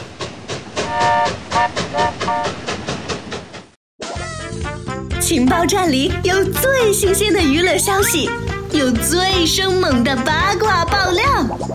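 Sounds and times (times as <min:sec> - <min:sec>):
train wheels clickety-clack arriving at a station: 0:00.0 - 0:03.8
speech: 0:05.3 - 0:11.7.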